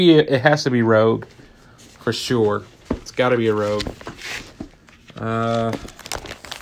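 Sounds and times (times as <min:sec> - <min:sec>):
speech: 0:00.0 - 0:01.4, 0:02.0 - 0:04.5, 0:05.2 - 0:06.0
plastic binder pages of skill cards crinkling and rustling: 0:01.8 - 0:06.6.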